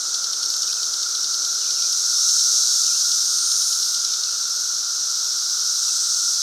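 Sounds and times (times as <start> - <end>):
periodical cicada chorus during 2024 emergence: 0.0 - 6.4.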